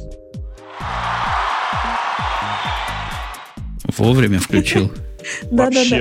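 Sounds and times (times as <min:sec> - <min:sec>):
crowd applause: 0:00.6 - 0:04.9
laughter: 0:04.0 - 0:05.6
speech: 0:04.0 - 0:05.9.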